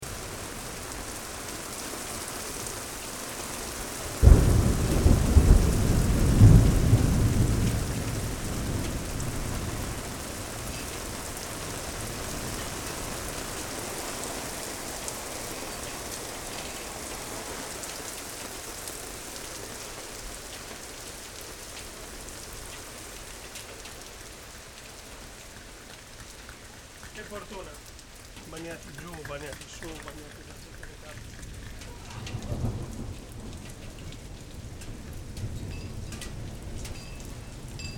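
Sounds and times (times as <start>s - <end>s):
thunderstorm: 3.7s - 15.9s, 31.2s - 37.9s.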